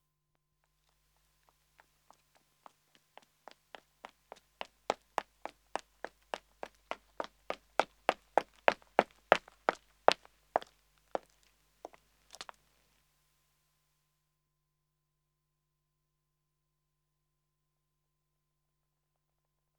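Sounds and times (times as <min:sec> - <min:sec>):
man running on pavement approaching: 0:01.4 - 0:12.6.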